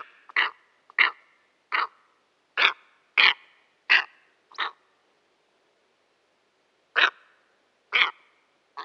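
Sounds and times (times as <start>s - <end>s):
steppe eagle hoarse barking calls: 0.0s - 2.0s, 2.6s - 4.8s, 6.9s - 7.3s, 7.9s - 8.8s.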